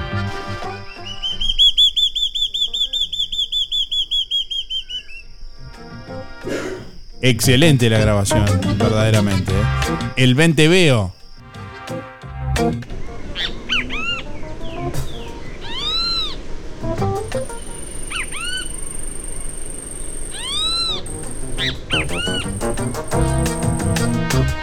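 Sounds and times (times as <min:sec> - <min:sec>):
birdsong in Uruguay: 0:00.0 - 0:11.4, 0:13.0 - 0:24.2
thin steady high whistle: 0:00.6 - 0:06.1, 0:17.3 - 0:24.4
loud nasal bird calls in Uruguay: 0:00.6 - 0:07.6, 0:13.3 - 0:16.5, 0:17.2 - 0:24.2
speech: 0:07.2 - 0:11.2.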